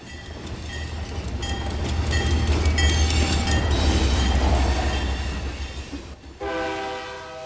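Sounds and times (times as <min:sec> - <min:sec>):
train rumbling past: 0:00.0 - 0:07.4
train horn blast: 0:06.4 - 0:07.4.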